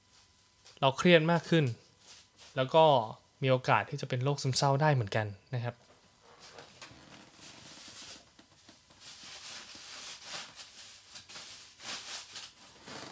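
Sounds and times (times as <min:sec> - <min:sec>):
speech: 0:00.8 - 0:01.8, 0:02.6 - 0:05.9
cat pawing and playing with a crinkling plastic bag: 0:07.3 - 0:08.3, 0:08.9 - 0:13.1.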